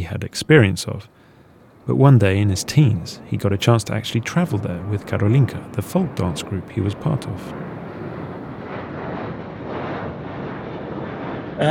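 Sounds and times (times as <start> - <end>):
speech: 0.0 - 1.2, 1.9 - 7.8
airplane engine roar: 0.0 - 11.6.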